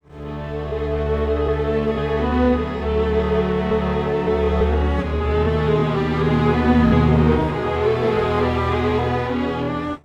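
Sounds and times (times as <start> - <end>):
strings time-stretched in Digidesign Pro Tools: 0.0 - 10.0.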